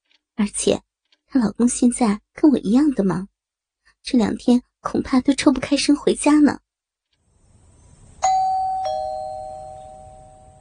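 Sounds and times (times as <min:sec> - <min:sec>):
speech: 0:00.4 - 0:03.3, 0:04.0 - 0:06.6
quiet hum: 0:07.1 - 0:10.5
two-tone doorbell ding-dong chime: 0:08.2 - 0:10.5.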